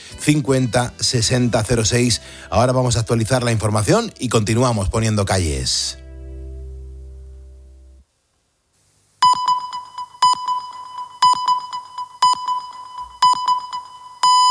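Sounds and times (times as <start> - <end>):
speech: 0.2 - 6.0
brief low tone: 5.9 - 8.0
Spanish radio hourly time signal electronic beeps: 9.2 - 14.4.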